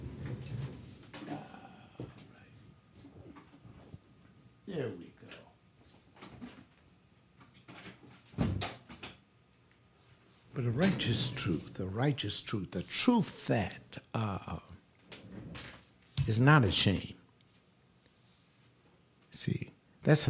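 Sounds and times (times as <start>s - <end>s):
speech: 4.8s - 5.1s, 10.6s - 14.7s, 16.3s - 17.1s, 19.4s - 20.2s
door scraping and rattling: 10.6s - 11.8s.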